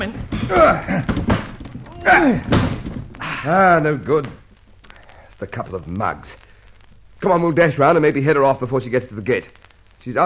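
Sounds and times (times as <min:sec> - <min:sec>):
speech: 0:00.0 - 0:01.2, 0:02.1 - 0:02.7, 0:03.4 - 0:04.4, 0:05.4 - 0:06.4, 0:07.2 - 0:10.2
straining voices: 0:00.0 - 0:09.5
shoulder slamming against a locked door: 0:00.2 - 0:03.3.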